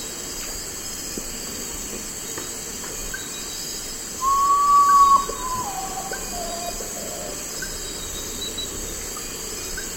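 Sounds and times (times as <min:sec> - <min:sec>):
faint high insect hum: 0:00.0 - 0:09.9
common potoo whistling in the eastern lowlands of South America: 0:04.2 - 0:07.4.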